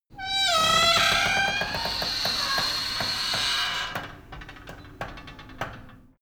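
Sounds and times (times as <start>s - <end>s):
metal door screeching open slowly: 0.2s - 4.3s.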